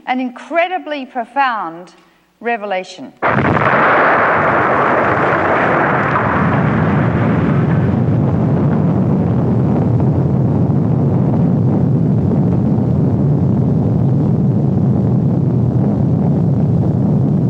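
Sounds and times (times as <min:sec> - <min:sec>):
speech: 0:00.1 - 0:05.4
massive explosion rumbling: 0:03.2 - 0:17.4.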